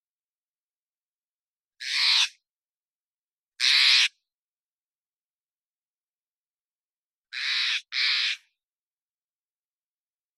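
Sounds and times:
Steller's jay Cyanocitta stelleri giving harsh raspy calls in Washington: 1.8 - 2.4, 3.6 - 4.3, 7.3 - 8.6.

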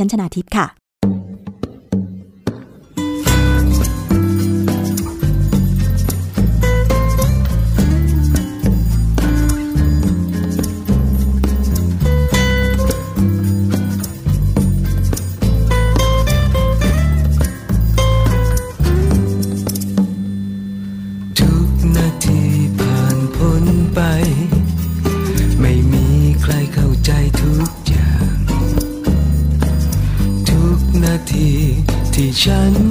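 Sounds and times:
speech: 0.0 - 1.2
song with steady beat and deep bass played during program break: 2.5 - 20.3, 21.4 - 32.9.

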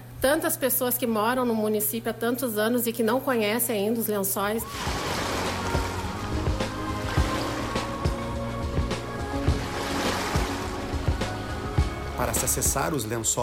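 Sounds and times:
speech: 0.2 - 5.0, 12.5 - 13.4
lagoon water splashing and slapping against the boat hull: 4.6 - 12.8
boat engine drone on open lagoon water: 4.6 - 13.2.

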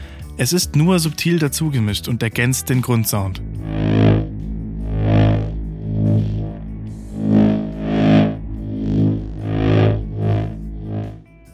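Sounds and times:
speech: 0.4 - 3.9
steady low hum from a TV set: 2.6 - 11.5
electric crackling from a TV set: 2.8 - 11.3.

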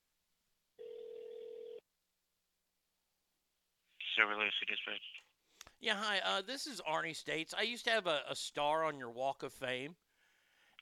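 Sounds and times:
ringback tone on a phone line: 0.8 - 1.8
speech: 4.2 - 10.0.

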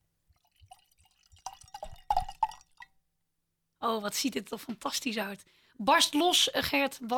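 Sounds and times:
wine pouring into a glass: 0.3 - 2.9
speech: 3.8 - 7.1.

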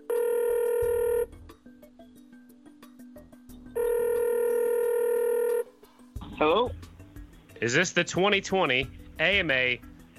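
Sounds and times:
electronic ring of an outgoing phone call: 0.0 - 1.3, 3.8 - 5.7
speech: 6.4 - 6.9, 7.6 - 9.9.

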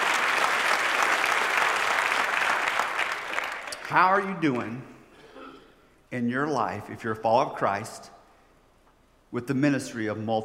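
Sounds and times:
audience applause: 0.0 - 4.0
speech: 3.9 - 4.9, 6.1 - 8.2, 9.3 - 10.4.

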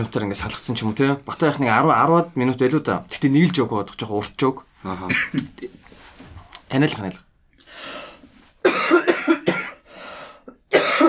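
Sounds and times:
speech: 0.0 - 5.8, 6.7 - 8.0
person with a cold coughing: 5.0 - 5.5, 8.6 - 9.9, 10.5 - 11.0
soft breathy sounds: 7.6 - 8.6, 9.9 - 10.6.

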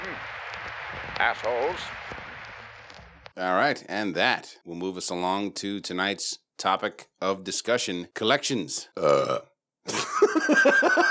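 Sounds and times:
speech: 1.2 - 2.1, 3.4 - 11.0
long loud croaky burp: 9.0 - 9.6
laughter: 9.9 - 11.0.

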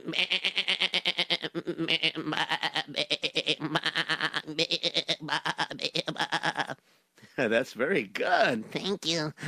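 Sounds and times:
person imitating sheep bleating: 0.0 - 6.8
speech: 0.1 - 0.5, 7.6 - 9.4.

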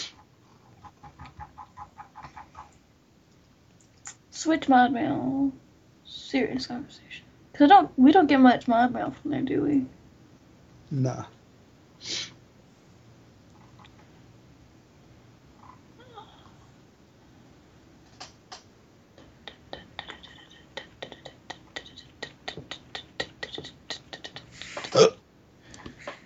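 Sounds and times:
speech: 4.4 - 5.6, 6.3 - 10.0, 10.9 - 11.4
burp: 24.8 - 25.2.

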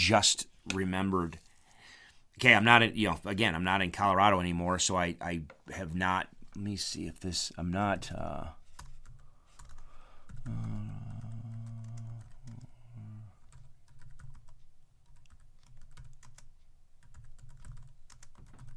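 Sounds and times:
speech: 0.0 - 1.5, 2.4 - 8.6, 10.4 - 11.0
fast typing on a computer keyboard: 8.8 - 12.7, 13.5 - 18.7
low voice: 10.5 - 13.3.

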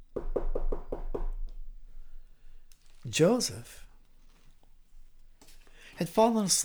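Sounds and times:
knocking on a wooden door: 0.1 - 1.7
speech: 3.1 - 3.8, 6.0 - 6.6.

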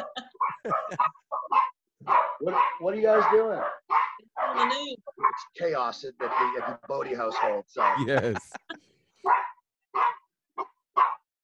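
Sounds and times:
laughter: 0.0 - 1.3, 8.0 - 9.0
household dogs barking with yips and woofs: 0.0 - 8.4, 9.2 - 11.3
speech: 0.6 - 1.1, 2.4 - 3.8, 5.6 - 8.7.

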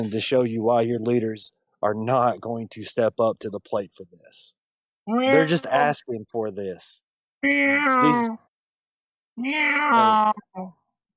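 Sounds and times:
speech: 0.0 - 8.4, 9.4 - 10.8
cat meowing: 9.4 - 10.4.

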